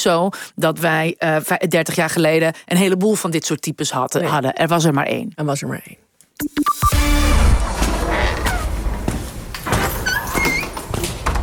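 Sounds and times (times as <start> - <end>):
speech: 0.0 - 7.7
door creaking open: 6.9 - 11.4
rumbling noisy drag with high squeaking whines: 7.5 - 11.4.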